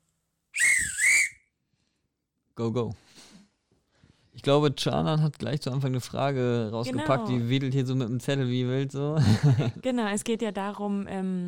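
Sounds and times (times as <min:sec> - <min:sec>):
referee whistle shrill trilling blast: 0:00.6 - 0:01.5
speech: 0:02.6 - 0:03.0, 0:04.4 - 0:11.4.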